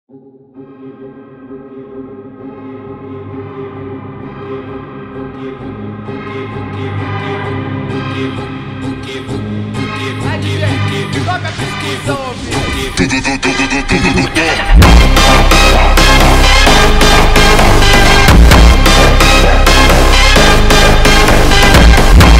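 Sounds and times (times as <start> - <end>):
drum rhythm: 10.3 - 22.3.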